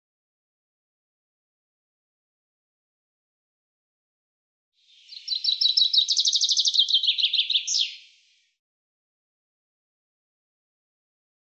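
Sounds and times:
Common chaffinch song with rapid high trills and downward flourish: 4.9s - 8.5s.

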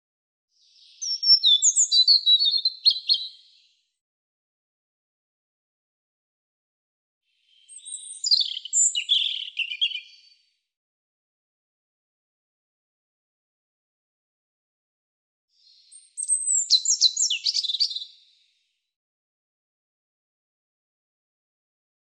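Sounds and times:
European robin singing high phrases of slurred whistles and trills: 0.6s - 3.8s, 7.4s - 10.4s, 15.6s - 18.4s.

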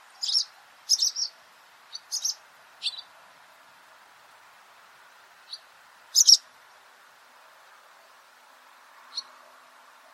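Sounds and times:
barn swallow calling with sharp high twittering chirps: 0.1s - 3.1s, 5.4s - 6.5s, 9.1s - 9.4s.

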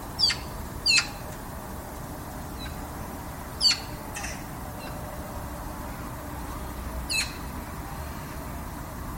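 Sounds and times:
constant low rushing background noise: 0.0s - 9.1s
bird calls of short high squeaky notes: 0.2s - 1.2s, 2.6s - 2.8s, 3.6s - 5.0s, 7.1s - 7.5s.

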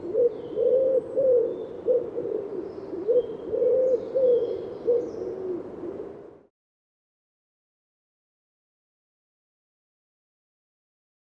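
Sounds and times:
bird cooing: 0.0s - 6.4s.

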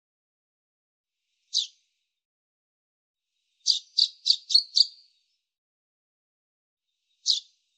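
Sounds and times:
Common chaffinch calls: 1.5s - 1.8s, 3.6s - 5.0s, 7.2s - 7.5s.

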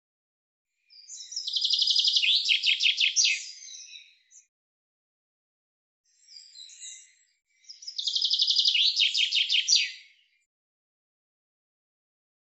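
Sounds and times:
common chaffinch song: 0.8s - 4.5s, 6.1s - 10.5s.

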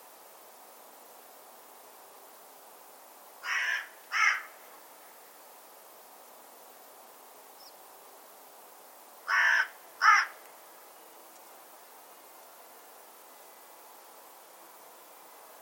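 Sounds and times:
soft background hiss: 0.0s - 15.5s
bird cawing: 3.4s - 4.6s, 9.3s - 10.4s.

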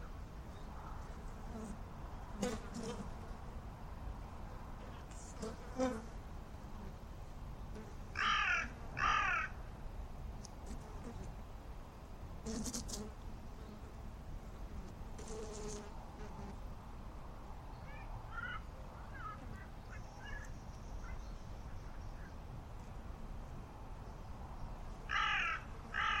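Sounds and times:
steady low background noise: 0.0s - 26.1s
bird rasping caws: 8.2s - 9.6s, 25.1s - 26.1s.

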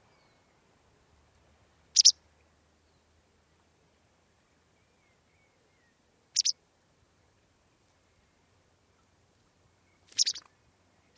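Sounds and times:
bird call with short sharp double-noted high chip: 2.0s - 2.2s, 6.4s - 6.6s, 10.1s - 10.5s.

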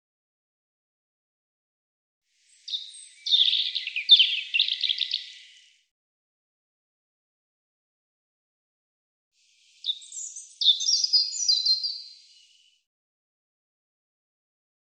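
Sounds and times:
European robin singing trilled and warbled phrases: 2.4s - 5.8s, 9.6s - 12.8s.

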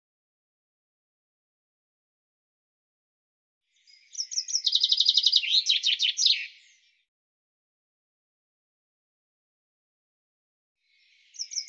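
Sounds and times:
bird song: 3.6s - 7.2s, 10.8s - 11.6s.

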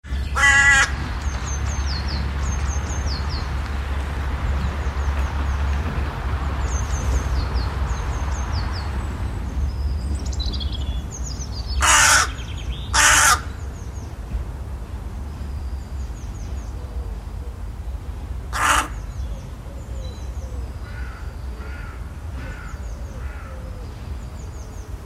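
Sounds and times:
other birds giving thin high chirps: 0.0s - 25.0s
bird giving harsh raspy caw-like calls: 0.2s - 1.0s, 11.8s - 13.6s, 18.5s - 19.1s, 20.8s - 23.7s.

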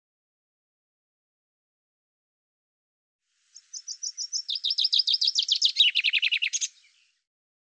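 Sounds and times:
common chaffinch song with descending trills: 3.5s - 7.3s.

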